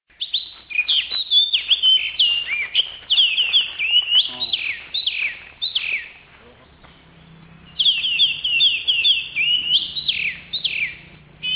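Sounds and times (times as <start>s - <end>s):
Oriental magpie-robin singing: 0.1s - 11.5s.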